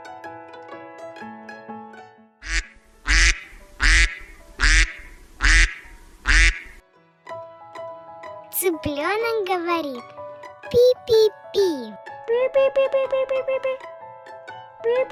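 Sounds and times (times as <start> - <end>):
light tuneful music: 0.0 - 15.1
duck quacking: 2.4 - 6.8
speech: 8.8 - 11.4, 12.4 - 13.9, 14.8 - 15.1.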